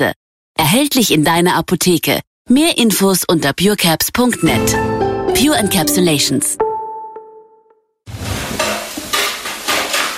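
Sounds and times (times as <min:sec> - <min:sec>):
speech: 0:00.0 - 0:06.7
frying pan sizzling: 0:08.1 - 0:10.1
spoon clinking and stirring against a metal pot: 0:08.5 - 0:10.1.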